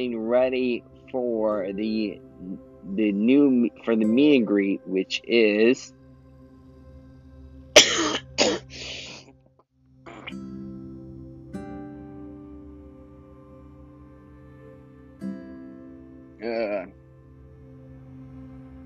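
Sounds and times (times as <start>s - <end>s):
speech: 0.0s - 6.0s
person coughing: 7.8s - 9.2s, 16.4s - 16.8s.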